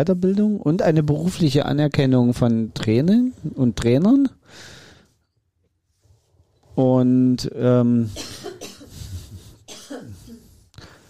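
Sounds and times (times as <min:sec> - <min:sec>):
speech: 0:00.0 - 0:04.8, 0:06.8 - 0:08.6
husky coughs: 0:08.1 - 0:09.0, 0:09.7 - 0:10.4.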